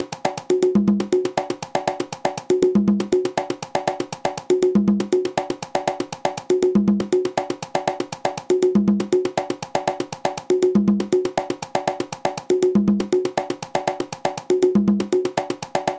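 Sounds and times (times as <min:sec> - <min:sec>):
conga drumming in songo rhythm: 0:00.0 - 0:15.9.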